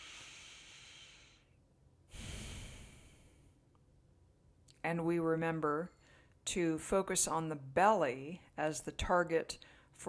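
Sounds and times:
slow breathing in and out through the nose: 0:00.0 - 0:03.6
speech: 0:04.8 - 0:10.0.

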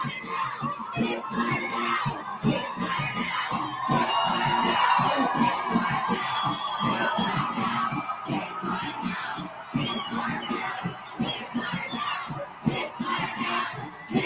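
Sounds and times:
crowd of pro-Palestinian protesters yelling and shouting: 0:00.0 - 0:14.2.

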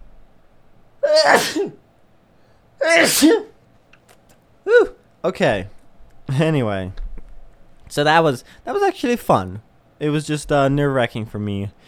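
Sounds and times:
person sneezing: 0:01.0 - 0:01.8, 0:02.8 - 0:03.6
speech: 0:01.2 - 0:01.8, 0:02.8 - 0:03.5, 0:04.7 - 0:07.0, 0:07.9 - 0:11.8.

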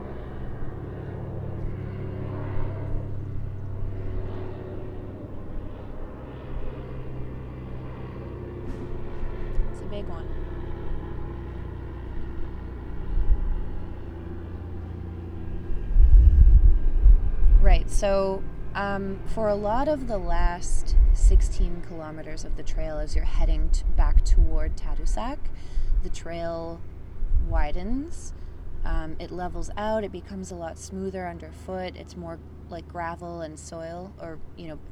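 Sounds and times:
military transport plane droning overhead: 0:00.0 - 0:34.9
speech: 0:18.0 - 0:25.4, 0:26.0 - 0:34.9.

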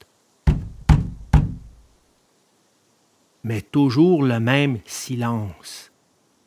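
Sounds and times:
heavy knocking on a wooden door: 0:00.5 - 0:01.9
speech: 0:03.4 - 0:05.9.

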